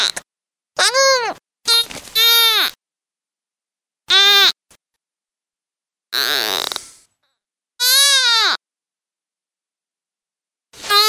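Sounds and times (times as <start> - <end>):
deer fawn distress calls, loud harsh bleats: 0.8 - 2.8, 4.1 - 4.6, 7.8 - 8.6, 10.8 - 11.0.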